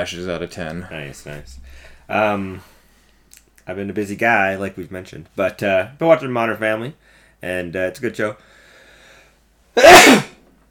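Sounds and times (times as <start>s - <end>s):
speech: 0.0s - 2.7s, 3.7s - 8.6s
person sneezing: 9.8s - 10.4s.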